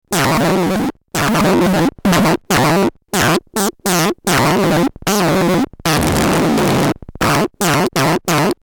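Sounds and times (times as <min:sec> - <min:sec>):
dying bumblebee buzzing: 0:00.2 - 0:08.6.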